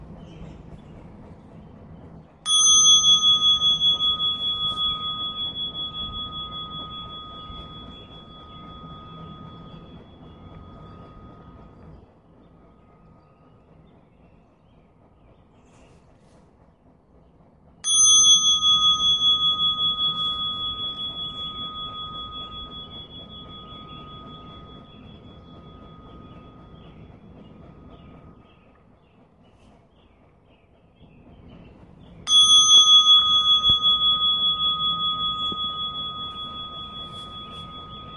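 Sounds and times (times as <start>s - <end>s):
faint low hum: 0.0s - 38.1s
meditation bell struck and ringing: 2.5s - 12.2s, 17.8s - 28.8s, 32.2s - 38.1s.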